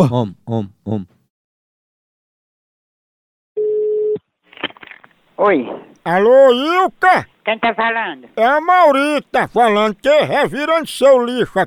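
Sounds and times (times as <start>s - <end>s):
speech: 0.0s - 1.2s, 5.4s - 11.6s
electronic beep of a telephone being dialed: 3.6s - 4.2s.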